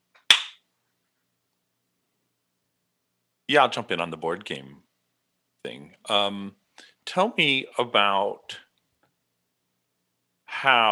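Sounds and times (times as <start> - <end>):
hand clap: 0.3 - 0.6
speech: 3.5 - 4.9, 5.6 - 8.6, 10.6 - 10.8.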